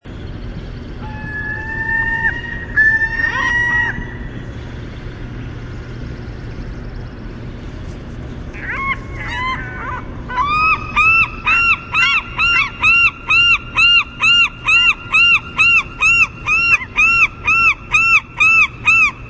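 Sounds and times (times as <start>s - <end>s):
Western gull: 0.8s - 4.7s, 8.5s - 19.2s.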